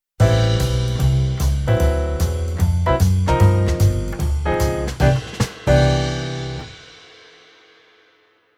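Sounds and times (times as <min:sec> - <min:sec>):
jazz piano: 0:00.2 - 0:07.0.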